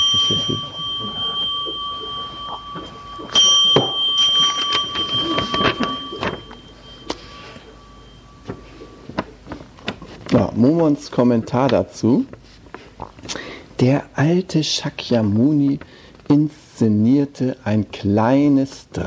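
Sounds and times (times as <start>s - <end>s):
bell ringing with a clear sustained metallic tone: 0.0s - 9.1s
speech: 0.3s - 0.8s, 10.6s - 12.4s, 13.8s - 19.0s.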